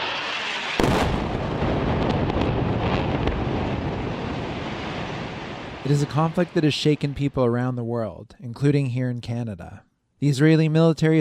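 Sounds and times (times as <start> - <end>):
bombing explosion blast in a city: 0.0 - 7.7
dense sustained roaring rumble after a bombing in a city: 0.0 - 7.9
speech: 5.8 - 11.2.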